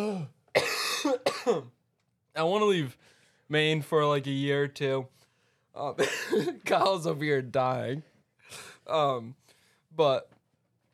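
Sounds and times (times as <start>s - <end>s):
speech: 0.0s - 0.4s, 1.0s - 1.8s, 2.4s - 5.2s, 5.8s - 9.4s, 10.0s - 10.4s
person coughing: 0.0s - 1.8s, 6.0s - 6.9s.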